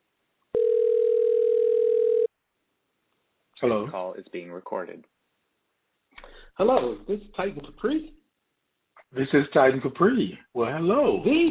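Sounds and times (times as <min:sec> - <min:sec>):
electronic telephone ring tone: 0:00.6 - 0:02.3
speech: 0:03.6 - 0:05.2, 0:06.6 - 0:08.2, 0:09.1 - 0:11.4.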